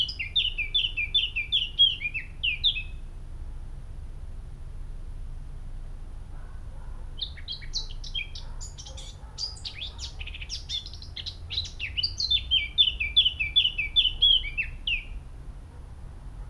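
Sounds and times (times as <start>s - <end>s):
Eurasian blackcap Sylvia atricapilla song: 0.0s - 2.9s, 7.2s - 15.2s.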